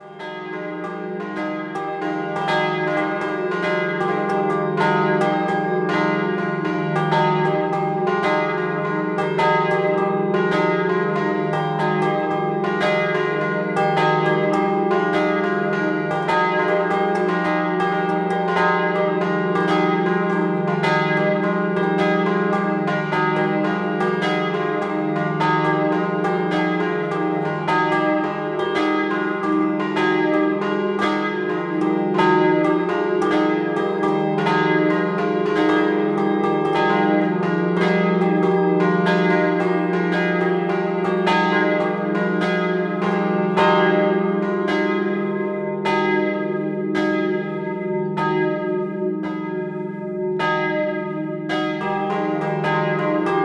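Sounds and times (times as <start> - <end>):
scampanottata bell ringing in Tomba: 0.0 - 53.4.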